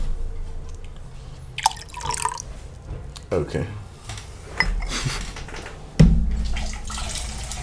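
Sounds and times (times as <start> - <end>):
low steady hum: 0.0 - 7.6
water dripping: 1.6 - 2.5, 6.3 - 7.6
speech: 3.3 - 3.8.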